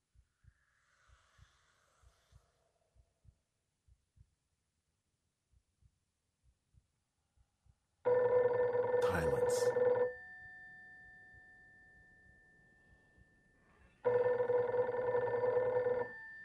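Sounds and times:
heavy black rotary dial telephone ringing: 8.1 - 10.3, 14.0 - 16.4
person speaking: 9.0 - 9.8.

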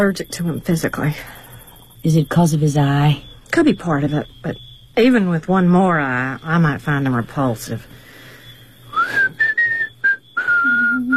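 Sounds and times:
speech: 0.0 - 1.4, 2.0 - 8.0
person whistling a short tune: 8.9 - 11.1.

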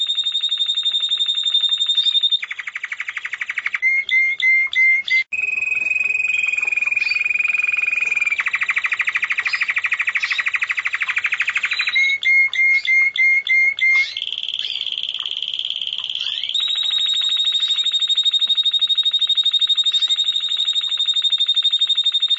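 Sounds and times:
Java sparrow song of chirps and buzzy rattling trills: 0.0 - 22.3.

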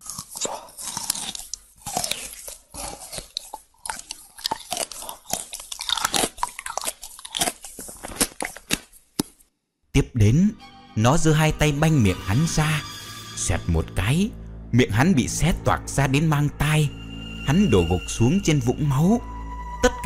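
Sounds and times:
monster crunchily chewing a human heart: 0.0 - 9.5
speech: 10.0 - 19.3.

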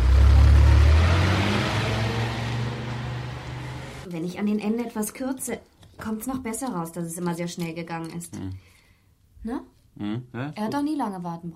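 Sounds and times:
open sports car and Mercedes engines rumbling while passing: 0.0 - 4.1
speech: 4.2 - 8.7, 9.4 - 11.5.

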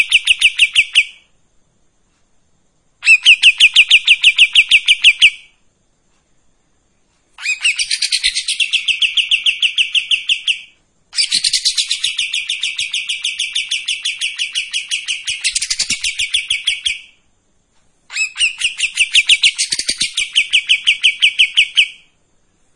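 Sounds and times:
streak-eared bulbul song: 0.0 - 1.3, 3.0 - 5.6, 7.4 - 17.3, 18.1 - 22.2.

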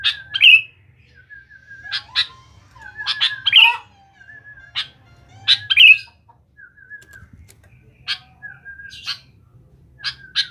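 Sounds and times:
sooty-headed bulbul song: 0.0 - 7.3.

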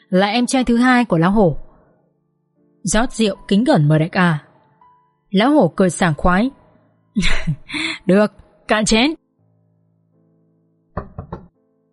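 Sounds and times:
speech: 0.1 - 1.6, 2.8 - 4.5, 5.3 - 6.6, 7.2 - 9.2
knocking on a door: 11.0 - 11.6.

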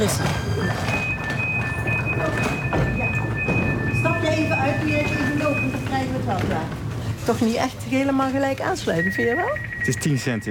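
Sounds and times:
speech: 0.0 - 0.4, 6.3 - 10.5
FLIRT train mechanical hum and rumble: 0.0 - 9.0
high steady electronic tones: 0.7 - 6.1, 9.0 - 10.5.

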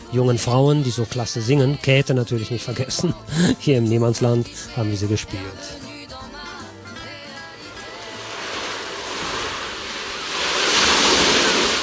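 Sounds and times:
speech: 0.1 - 5.9
fresh sea breeze through an open studio window: 7.3 - 11.8
sea waves through an open studio window: 7.4 - 11.8.

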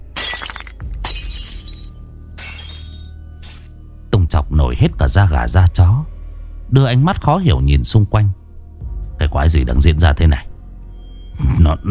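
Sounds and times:
heavy crunching ceramic debris: 0.0 - 3.7
orchid flower pot falling to the ground and shattering: 0.0 - 3.8
scattered tinkle of ceramic shards settling: 0.2 - 3.7
speech: 4.3 - 8.4, 9.2 - 10.5, 11.4 - 11.9.

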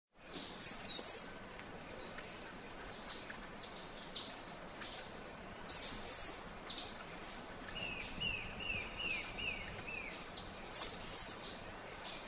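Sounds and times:
Half-collared sparrow Arremon semitorquatus lower chirps: 0.3 - 1.4, 2.0 - 7.0, 7.7 - 12.2.

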